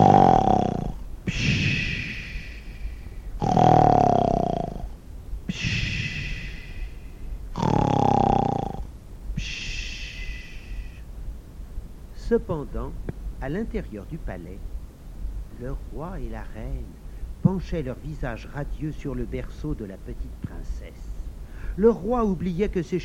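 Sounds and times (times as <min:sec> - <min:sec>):
loud rhythmic snoring: 0:00.0 - 0:02.6, 0:03.4 - 0:04.9, 0:05.6 - 0:06.9, 0:07.6 - 0:08.9
speech: 0:12.4 - 0:14.7, 0:15.6 - 0:21.1, 0:21.8 - 0:23.0.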